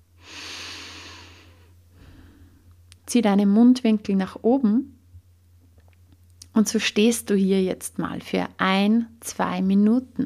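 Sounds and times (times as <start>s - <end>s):
low steady hum: 0.0s - 10.2s
calm deep breathing from a standing person: 0.2s - 2.8s
speech: 3.1s - 5.0s, 6.6s - 10.2s.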